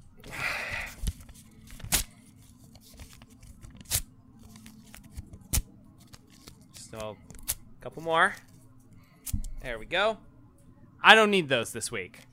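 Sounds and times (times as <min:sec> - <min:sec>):
paper rustling: 0:01.0 - 0:07.5
speech: 0:06.9 - 0:08.5, 0:09.6 - 0:10.3, 0:11.0 - 0:12.2.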